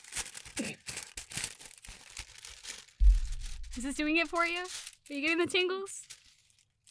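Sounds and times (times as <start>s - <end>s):
paper crinkling: 0.0s - 6.9s
dull low thump: 3.0s - 4.4s
speech: 3.8s - 6.0s.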